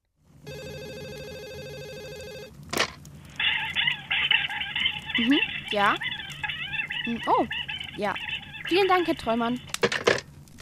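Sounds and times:
telephone ringing: 0.5s - 2.6s
warbling chirpy sound: 3.4s - 9.6s
speech: 5.2s - 6.1s, 7.0s - 9.7s.

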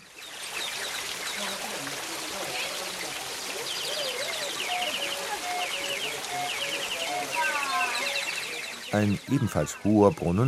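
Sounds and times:
fountain water splashing: 0.0s - 10.4s
water-driven organ pipes imitating birdsong: 3.8s - 10.3s
speech: 8.9s - 10.4s.

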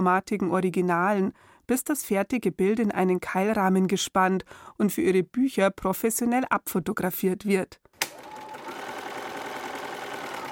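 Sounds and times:
speech: 0.0s - 8.3s
sewing machine running on appliquéd fabric pictures: 8.0s - 10.4s.

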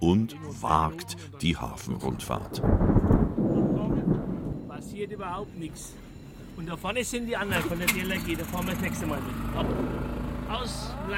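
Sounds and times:
speech: 0.1s - 3.3s, 4.8s - 6.0s, 6.6s - 11.1s
rumble of thunder from an approaching thunderstorm: 2.1s - 6.3s.

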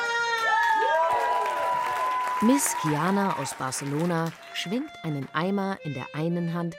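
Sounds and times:
audience at a burlesque show in Munich cheering with sliding whoops: 0.0s - 4.1s
audience clapping at a burlesque show in Munich: 0.0s - 5.4s
speech: 2.4s - 6.7s.

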